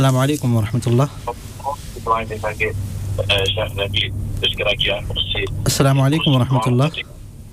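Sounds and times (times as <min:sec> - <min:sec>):
speech: 0:00.0 - 0:07.2
steady low electrical hum: 0:00.0 - 0:07.5
telephone-filtered voice of a listener calling a radio program: 0:01.6 - 0:07.1.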